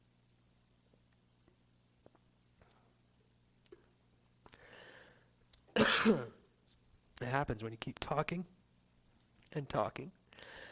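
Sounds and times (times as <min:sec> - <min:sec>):
breathy inhale: 0:04.5 - 0:05.3, 0:10.3 - 0:10.7
person coughing: 0:05.8 - 0:06.4
speech: 0:06.0 - 0:06.3, 0:07.2 - 0:08.6, 0:09.5 - 0:10.7.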